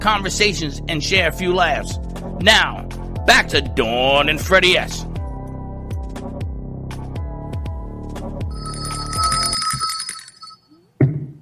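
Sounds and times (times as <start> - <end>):
speech: 0.0 - 5.1
phone ringtone with rhythmic electronic melody: 8.5 - 10.7.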